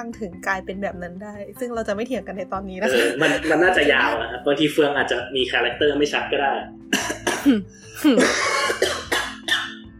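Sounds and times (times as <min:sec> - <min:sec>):
speech: 0:00.0 - 0:09.0
laughter: 0:02.8 - 0:04.7
person coughing harshly: 0:06.9 - 0:09.8.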